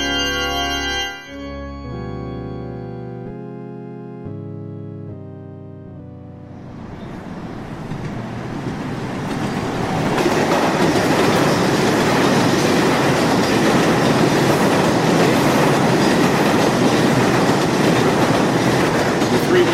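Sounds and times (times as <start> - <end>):
express subway train roaring through a tunnel in Manhattan: 0.0 - 2.9, 5.9 - 19.7
rattling subway train wheels: 7.0 - 19.7.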